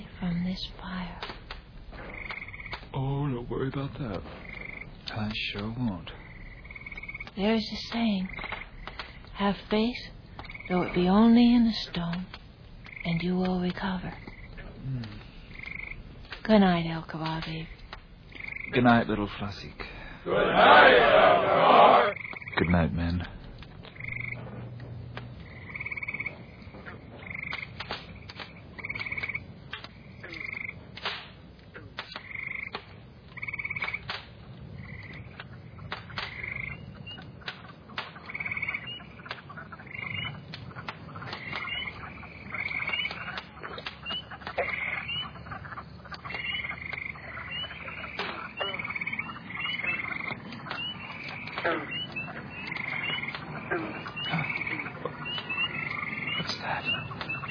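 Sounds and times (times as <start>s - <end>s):
dense chorus of frogs croaking loudly: 0.0s - 57.5s
speech: 0.5s - 1.4s, 3.0s - 4.5s, 5.1s - 6.2s, 7.4s - 8.5s, 9.4s - 12.4s, 13.0s - 15.2s, 16.5s - 17.8s, 18.7s - 23.4s.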